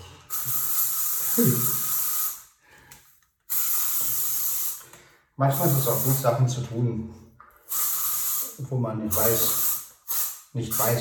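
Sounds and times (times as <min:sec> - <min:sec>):
aerosol fragrance or deodorant spray hissing: 0:00.3 - 0:02.5, 0:03.5 - 0:04.8, 0:05.5 - 0:06.3, 0:07.6 - 0:10.9
speech: 0:01.4 - 0:01.8, 0:05.4 - 0:07.2, 0:08.6 - 0:09.6, 0:10.5 - 0:10.9.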